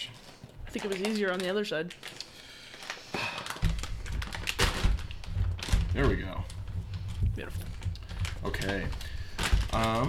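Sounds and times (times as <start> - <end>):
crinkling and plastic rustle of a food package: 0.2 - 10.0
speech: 0.7 - 2.2, 6.0 - 6.6, 7.4 - 7.8, 8.4 - 9.1, 9.7 - 10.0
dull thumps: 3.6 - 10.0.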